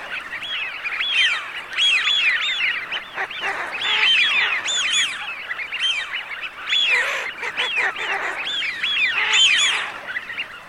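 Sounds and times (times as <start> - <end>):
Eurasian wigeons calling together in a whistled chorus: 0.5 - 10.5.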